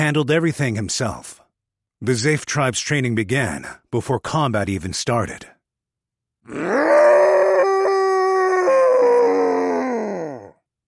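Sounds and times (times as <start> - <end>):
speech: 0.0 - 1.4, 2.0 - 5.6, 6.4 - 7.1
deep guttural bestial roar: 6.5 - 10.6.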